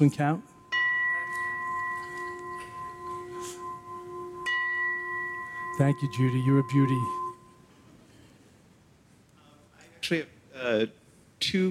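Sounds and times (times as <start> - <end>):
speech: 0.0 - 0.5, 5.8 - 7.2, 10.1 - 11.6
resonant metallic gong ringing: 0.0 - 7.6.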